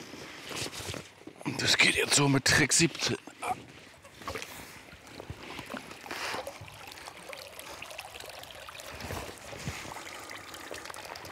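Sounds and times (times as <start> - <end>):
speech: 1.5 - 3.7
water draining through fine mesh of lifted Baltic whitefish cage: 5.6 - 11.3.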